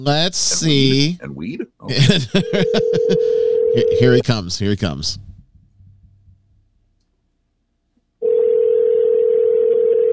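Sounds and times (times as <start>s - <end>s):
speech: 0.0s - 5.3s
laughter: 1.9s - 4.8s
telephone ringing tone: 2.4s - 4.2s, 8.2s - 10.1s.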